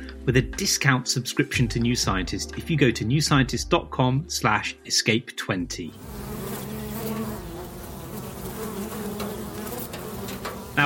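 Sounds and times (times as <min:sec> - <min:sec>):
speech: 0:00.2 - 0:06.3
swarm of bees buzzing: 0:06.0 - 0:10.8.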